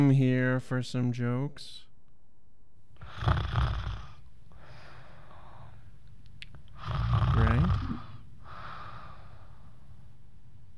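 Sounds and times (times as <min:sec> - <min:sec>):
speech: 0:00.0 - 0:01.9, 0:03.2 - 0:03.8
loud rattling snore: 0:03.0 - 0:04.2, 0:06.8 - 0:08.0
quieter breathy exhale: 0:04.5 - 0:05.8, 0:07.9 - 0:09.8.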